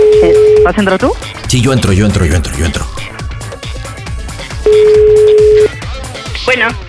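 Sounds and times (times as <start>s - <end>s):
telephone dialing tone: 0.0s - 0.8s, 4.7s - 5.7s
speech: 0.2s - 2.9s, 6.4s - 6.8s.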